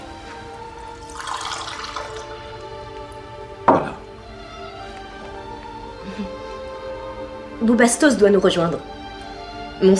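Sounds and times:
fresh water being poured for a drink: 0.7 - 2.8
speech: 7.6 - 9.0, 9.8 - 9.9.

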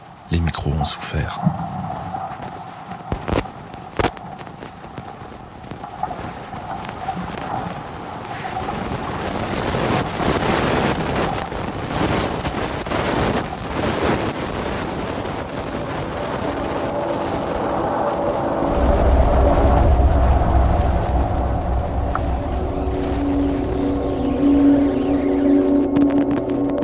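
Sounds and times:
wind and waves roaring around a racing sailboat at sea: 0.0 - 26.8
speech: 0.3 - 1.9
faint tonal hum: 16.5 - 26.8.

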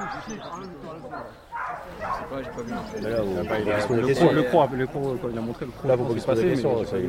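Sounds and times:
people talking: 0.0 - 7.0
dog barking and yelping during bite training: 1.5 - 2.8.

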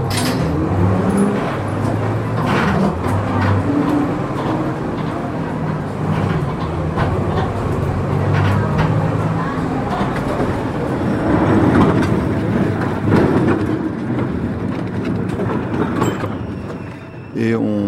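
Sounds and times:
metro train rumbling at a metro station: 0.0 - 17.8
faint indistinct voices at a metro station: 4.5 - 13.1.

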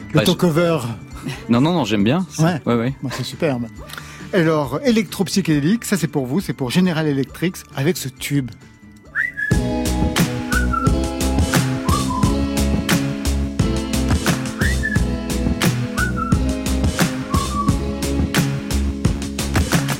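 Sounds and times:
speech: 0.1 - 8.7
whistled phrases with a rising-then-falling swoop: 9.1 - 9.6, 10.5 - 11.0, 11.6 - 12.4, 14.4 - 15.1, 15.9 - 17.9
loud electronic groove with steady drums and bass: 9.2 - 19.9.

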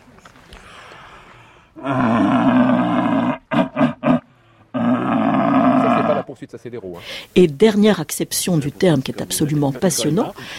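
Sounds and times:
speech: 1.8 - 2.1, 6.4 - 10.5
red deer stag belling during rut: 1.8 - 6.3.

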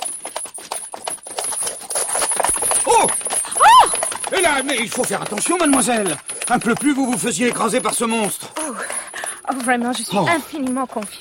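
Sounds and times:
horse hooves clip-clopping at a trot: 0.0 - 11.1
speech: 4.4 - 8.8, 9.5 - 11.1.

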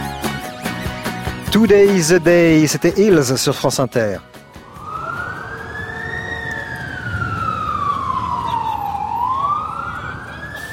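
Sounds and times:
speech: 1.5 - 4.4
steady rumble of traffic on a New York street: 3.0 - 10.7
siren wailing along a New York street: 4.5 - 10.7.

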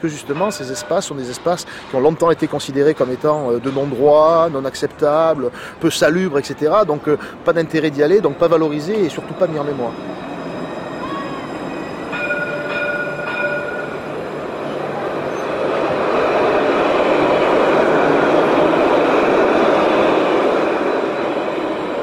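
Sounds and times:
speech: 0.0 - 10.2
tram rumbling along its rails: 0.0 - 22.0
high tonal chime or squeal: 8.2 - 14.1.

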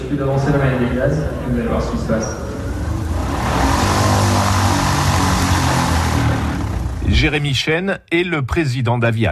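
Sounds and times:
speech: 0.1 - 2.6, 7.1 - 9.3
electric motor and propeller of an electric single-engine aircraft running: 2.3 - 7.4.

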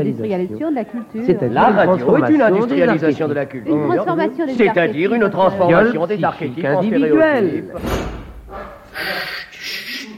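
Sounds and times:
speech: 0.0 - 9.2
door slamming shut with a heavy low thud: 7.8 - 9.0.

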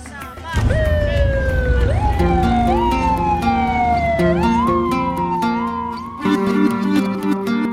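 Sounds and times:
steady traffic rumble: 0.6 - 6.2
motorcade sirens wailing through city streets: 0.6 - 7.6.

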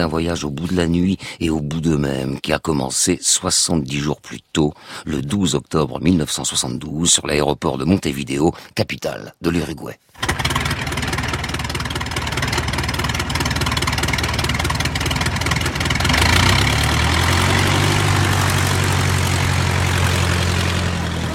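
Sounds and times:
speech: 0.0 - 10.6
twin-engine propeller plane engines running: 10.2 - 21.3.

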